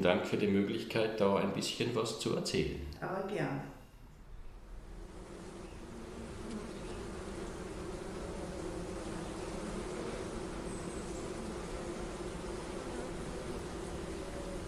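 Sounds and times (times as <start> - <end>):
speech: 0.0 - 3.8
many honeybees buzzing in an outdoor garden: 4.3 - 14.6.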